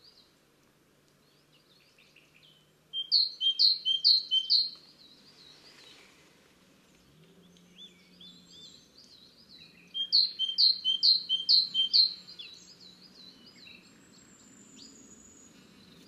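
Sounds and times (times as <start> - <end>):
great tit singing two-note phrases: 1.8 - 5.9, 7.5 - 16.0.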